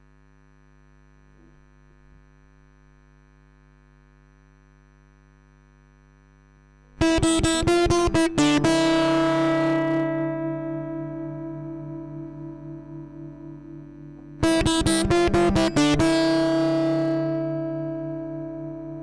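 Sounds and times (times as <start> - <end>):
lead guitar: 7.0 - 19.0.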